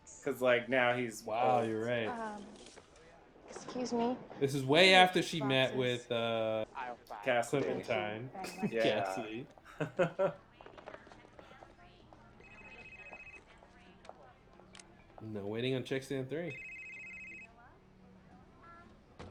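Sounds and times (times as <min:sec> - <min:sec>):
speech: 0:00.2 - 0:02.7, 0:03.7 - 0:10.4, 0:15.2 - 0:16.7
laughter: 0:00.3 - 0:02.2, 0:04.4 - 0:06.6, 0:07.2 - 0:10.4
old-fashioned telephone bell ringing: 0:12.4 - 0:13.4, 0:16.5 - 0:17.5.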